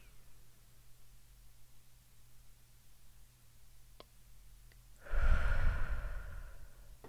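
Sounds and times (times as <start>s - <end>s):
deep breath in during a calming breathing exercise: 5.0s - 7.0s.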